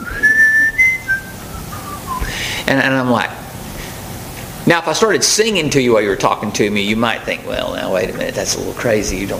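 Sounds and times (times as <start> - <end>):
person whistling a tune: 0.0 - 2.4
speech: 2.7 - 3.4, 4.7 - 9.3.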